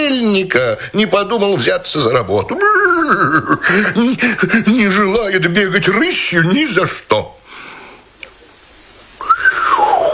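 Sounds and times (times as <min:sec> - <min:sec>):
speech: 0:00.1 - 0:07.4
laughter: 0:02.5 - 0:04.2
person whistling: 0:09.2 - 0:10.0.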